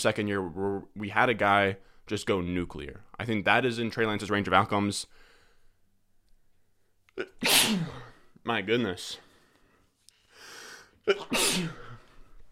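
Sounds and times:
speech: 0.0s - 5.2s, 7.2s - 9.2s, 11.1s - 11.8s
person sneezing: 7.2s - 8.3s, 11.0s - 12.2s.

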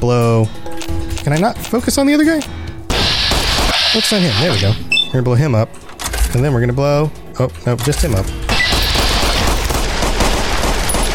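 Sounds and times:
speech: 0.0s - 0.6s, 1.2s - 2.6s, 3.9s - 8.4s
rapid video game gunfire hitting the player: 2.9s - 4.8s, 8.5s - 11.1s.

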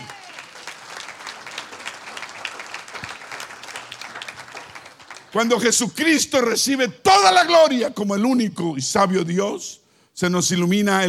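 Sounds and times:
audience applauding: 0.0s - 5.8s
speech: 5.3s - 11.0s.

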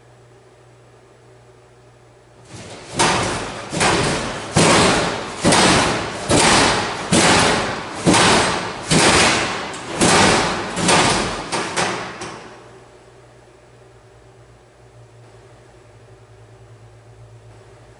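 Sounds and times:
door in a school hallway banging with heavy booming thuds: 2.4s - 12.6s.

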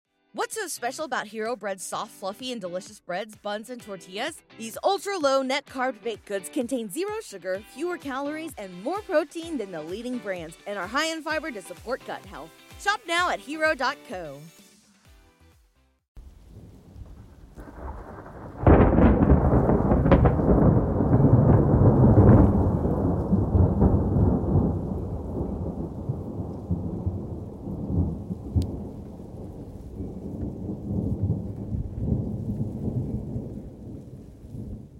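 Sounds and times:
speech: 0.4s - 14.6s
loud crack of thunder rolling into a deep rumble: 16.2s - 34.9s
steady hiss of heavy rain: 16.2s - 34.9s.

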